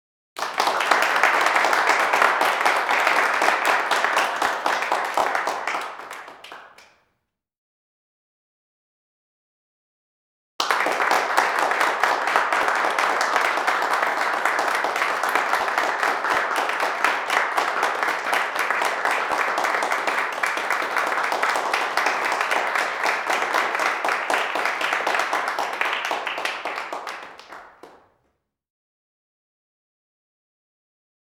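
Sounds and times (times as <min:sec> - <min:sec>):
small crowd applauding indoors in a large room: 0:00.4 - 0:07.0, 0:10.6 - 0:28.2.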